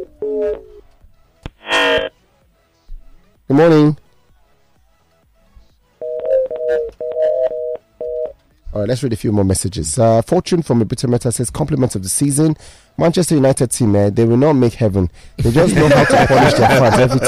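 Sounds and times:
electronic telephone tones: 0.0 - 0.8, 1.6 - 2.1, 6.0 - 8.4
telephone dialing beeps: 1.6 - 2.1, 6.0 - 8.4
speech: 3.5 - 4.0, 8.8 - 17.2
laughter: 15.6 - 17.2.

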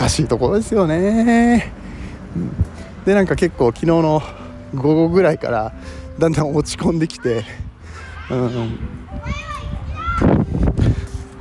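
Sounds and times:
speech: 0.0 - 7.6, 8.3 - 9.5
children shouting and squealing playfully: 4.4 - 5.7, 6.8 - 11.3.

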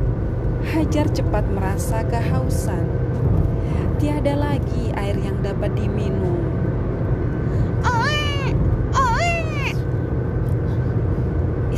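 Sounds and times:
low rumble: 0.0 - 11.7
speech: 0.7 - 6.6
baby crying from thirst: 7.8 - 9.8.

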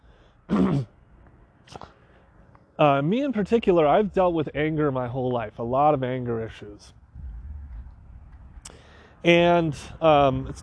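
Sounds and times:
speech: 0.5 - 0.9, 2.8 - 7.0, 9.2 - 10.6
throat clearing: 0.5 - 1.0.

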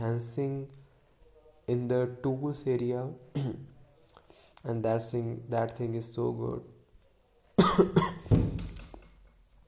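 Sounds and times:
speech: 0.0 - 0.8, 1.7 - 3.7, 4.3 - 6.7, 7.6 - 8.4
person coughing harshly: 3.4 - 3.6, 7.6 - 8.3.

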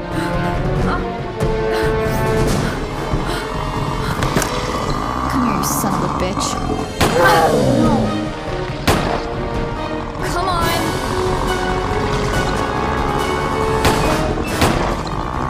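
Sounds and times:
dense continuous rumbling background: 0.0 - 15.4
gunshots from a gun: 8.8 - 9.4, 13.4 - 15.4.

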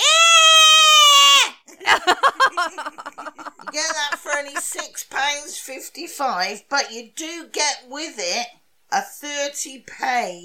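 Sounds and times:
mini screaming goat toy scream: 0.0 - 1.6
laughter: 1.9 - 4.9
speech: 4.4 - 10.4.

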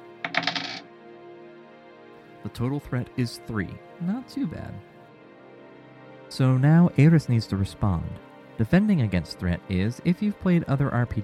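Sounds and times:
two dice clattering across a hard surface: 0.2 - 0.8
speech: 2.4 - 4.9, 6.3 - 11.2.

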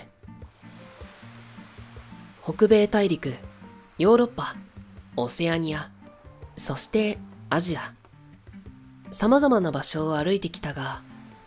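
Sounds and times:
gentle waves lapping on white sandy beach: 0.1 - 11.4
speech: 2.4 - 6.0, 6.6 - 8.0, 9.1 - 11.1.

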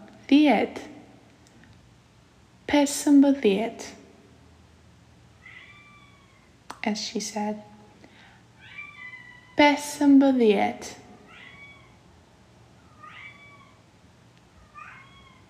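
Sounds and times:
speech: 0.3 - 0.9, 2.7 - 4.0, 6.8 - 7.7, 9.6 - 11.0
cat meowing: 5.4 - 6.6, 8.6 - 9.6, 11.2 - 12.0, 12.8 - 13.9, 14.5 - 15.4.

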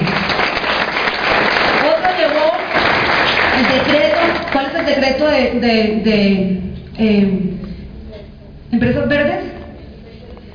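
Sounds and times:
audience applauding: 0.0 - 5.0
speech: 5.3 - 7.6, 8.7 - 9.5.

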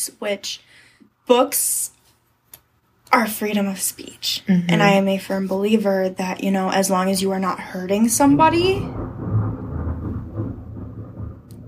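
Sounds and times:
speech: 0.0 - 2.0, 3.1 - 9.2
deep continuous rumble of thunder during a thunderstorm: 7.8 - 11.6.

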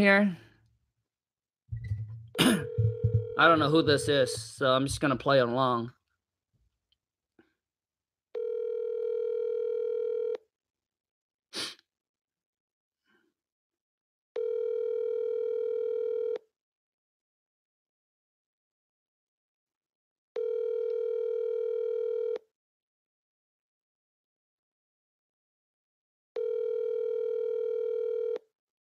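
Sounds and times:
speech: 0.0 - 0.4, 3.4 - 6.0
phone line ringback tones unanswered: 2.6 - 4.1, 8.4 - 10.4, 14.4 - 16.4, 20.4 - 22.4, 26.4 - 28.4.

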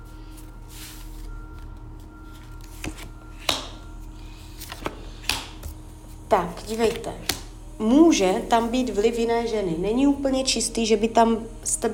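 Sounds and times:
steady low hum: 0.0 - 11.9
tarot cards being drawn and laid out: 0.3 - 5.8, 6.6 - 7.5
speech: 6.3 - 11.9.

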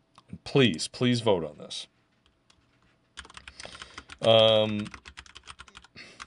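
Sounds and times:
speech: 0.5 - 1.9, 4.2 - 5.0
typing on a computer keyboard: 2.2 - 6.2.

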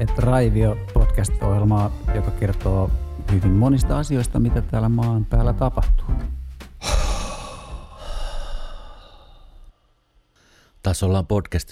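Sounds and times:
speech: 0.0 - 6.1, 10.9 - 11.6
long deep breaths in a breathing exercise: 6.8 - 10.8.

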